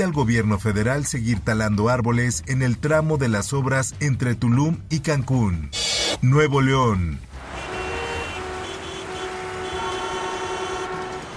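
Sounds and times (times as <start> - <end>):
speech: 0.0 - 7.3
train rumbling past: 7.4 - 11.3
clatter of train cars: 10.0 - 11.3.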